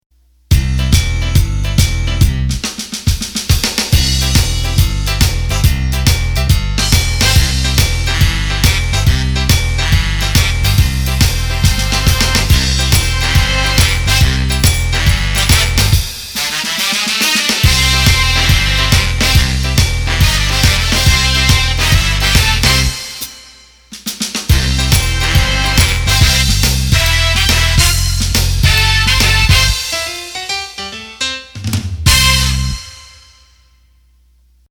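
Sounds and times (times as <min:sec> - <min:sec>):
rock backing rhythm from a Roland BK7m arranger: 0:00.5 - 0:33.3.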